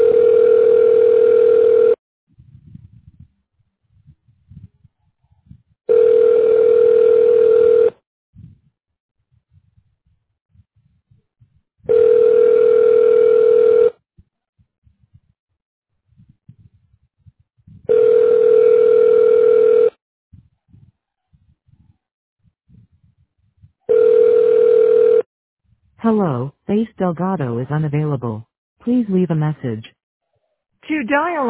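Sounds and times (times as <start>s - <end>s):
telephone ringing tone while a call is being forwarded: 0.0s - 2.0s, 5.9s - 8.0s, 11.9s - 14.0s, 17.9s - 19.9s, 23.9s - 25.3s
speech: 26.1s - 30.0s, 30.9s - 31.4s.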